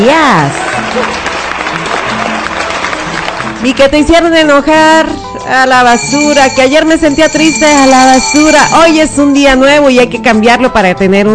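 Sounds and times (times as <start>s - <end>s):
applause during a Friday morning greeting: 0.2s - 4.4s
speech: 3.6s - 11.3s.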